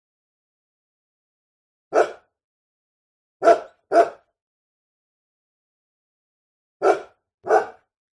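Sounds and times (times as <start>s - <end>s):
medium-sized dog barking: 1.9s - 2.3s, 3.4s - 4.3s, 6.8s - 7.9s.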